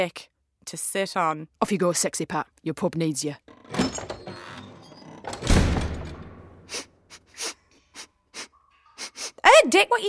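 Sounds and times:
speech: 0.0s - 4.1s, 9.7s - 10.0s
nose sniffing: 6.7s - 9.4s.

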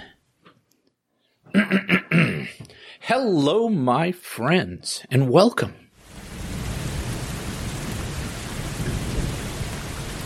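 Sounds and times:
speech: 3.1s - 5.8s
deep low rumble of thunder: 6.0s - 10.2s
heavy rain during a thunderstorm: 6.0s - 10.2s.

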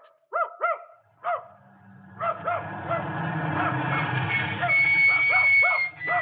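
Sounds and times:
dog barking at a farm: 0.0s - 1.6s, 2.2s - 3.7s, 4.6s - 6.2s
busy rumbling commotion: 1.1s - 6.2s.

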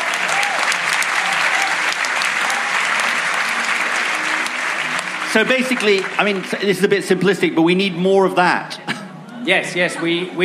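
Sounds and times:
audience applause for the signing of a peatland protection treaty: 0.0s - 7.5s
speech: 5.3s - 8.9s, 9.5s - 10.4s.

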